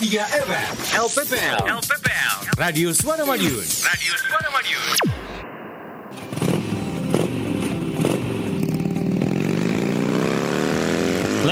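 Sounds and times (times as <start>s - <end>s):
speech: 0.0s - 5.3s
motorcycle engine revving as the bike is ridden: 6.1s - 11.4s.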